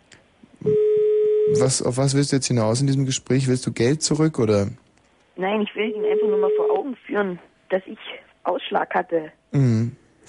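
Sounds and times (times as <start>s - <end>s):
telephone ringback tone on international call: 0.6s - 1.6s, 5.9s - 6.8s
speech: 1.6s - 10.2s.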